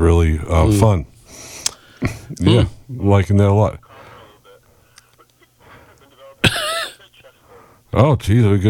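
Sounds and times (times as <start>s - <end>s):
speech: 0.0s - 1.1s, 2.0s - 3.8s, 7.9s - 8.6s
person coughing over the phone: 6.1s - 7.4s.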